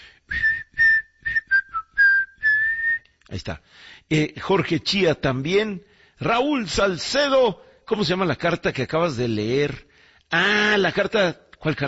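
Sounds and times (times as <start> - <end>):
person whistling a short lively tune: 0.3 - 3.1
speech: 3.3 - 11.8.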